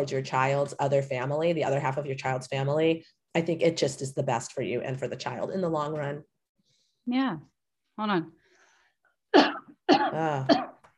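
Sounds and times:
speech: 0:00.0 - 0:06.3, 0:07.0 - 0:08.4, 0:09.3 - 0:10.7
person coughing: 0:09.3 - 0:10.8.

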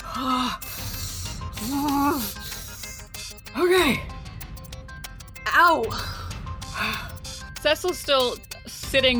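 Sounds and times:
person imitating heavy panting breaths: 0:00.0 - 0:03.2
speech: 0:01.6 - 0:02.4, 0:05.6 - 0:06.2, 0:07.6 - 0:09.1.

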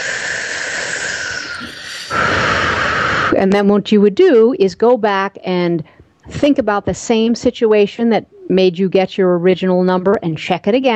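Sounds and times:
deep breath drawn during a tapping exercise: 0:00.0 - 0:03.4
speech: 0:03.3 - 0:10.9.

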